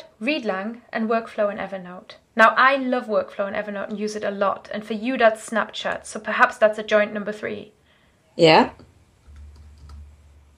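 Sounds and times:
speech: 0.2 - 7.8, 8.4 - 8.9
soft low hum: 8.2 - 10.5
typing on a computer keyboard: 9.3 - 10.1.

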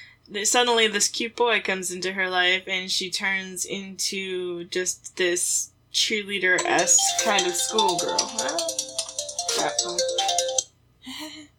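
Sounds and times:
speech: 0.3 - 8.9, 9.6 - 10.2
melodic electronic phone ringtone: 6.6 - 10.6.

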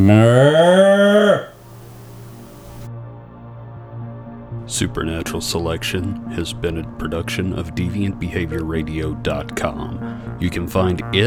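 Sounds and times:
speech: 0.0 - 1.5, 4.7 - 11.2
cow mooing: 0.0 - 2.8.

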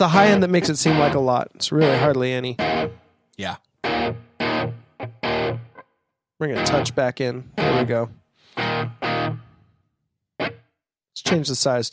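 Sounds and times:
speech: 0.0 - 4.2, 6.4 - 8.2, 11.3 - 11.9
distorted electric guitar chords with reverb: 0.2 - 3.1, 3.8 - 9.6, 10.4 - 10.7.

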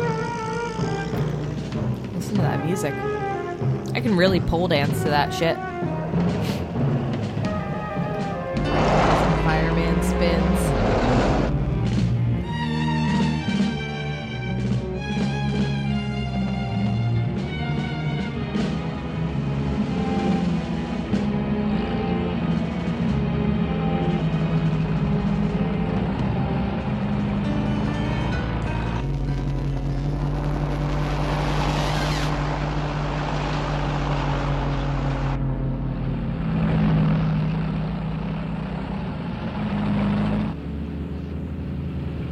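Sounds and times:
heavy construction trucks rumbling by: 0.0 - 42.3
speech: 2.3 - 6.6.

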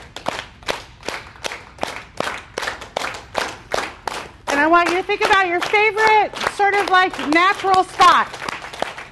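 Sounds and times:
hands clapping: 0.0 - 9.0
speech: 4.6 - 8.4.

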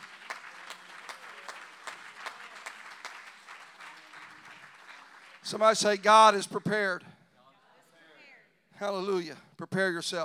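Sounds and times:
congregation clapping in a steady rhythmic beat: 0.0 - 6.1
speech: 5.5 - 7.1, 8.8 - 10.2.

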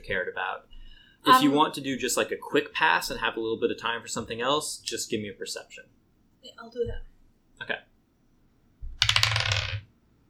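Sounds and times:
speech: 0.1 - 7.9
dice rolling on a hard tabletop for a role-playing game perception check: 8.8 - 9.9.

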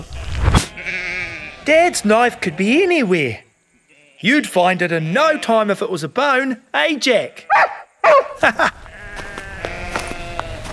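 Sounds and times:
sheep bleating: 0.0 - 2.9, 3.8 - 5.7, 8.8 - 10.7
flock of sheep bleating: 0.2 - 1.6, 3.8 - 4.4, 8.8 - 10.6
speech: 1.7 - 3.4, 4.2 - 7.8, 8.4 - 8.8.

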